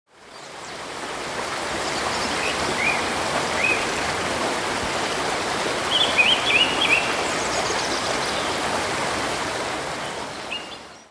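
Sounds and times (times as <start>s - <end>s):
river flowing in a forest: 0.1s - 11.1s.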